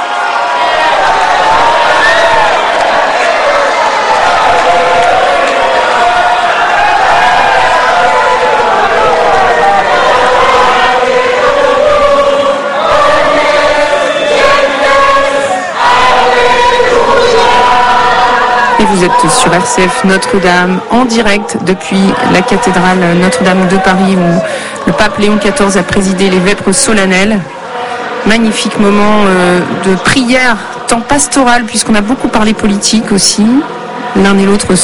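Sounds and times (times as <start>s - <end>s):
large crowd cheering at Notre-Dame cathedral in Paris: 0.0s - 34.8s
speech: 19.1s - 27.6s, 28.2s - 34.8s.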